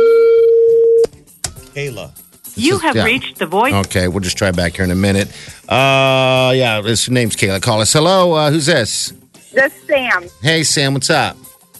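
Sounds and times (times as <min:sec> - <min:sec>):
telephone line tone: 0:00.0 - 0:01.0
speech: 0:01.8 - 0:11.5.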